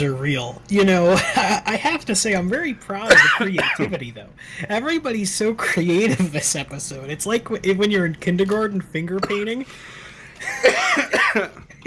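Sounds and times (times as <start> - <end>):
speech: 0.0 - 11.8
person coughing after choking on a lollipop: 1.1 - 1.8, 3.1 - 4.0, 9.2 - 9.5, 10.4 - 11.8.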